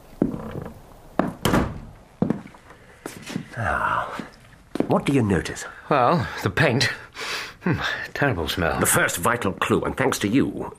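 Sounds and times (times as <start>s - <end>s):
door pushed shut with wooden clunks, latch clicks and a thud: 0.2s - 2.0s
speech: 3.6s - 4.3s, 4.9s - 10.7s.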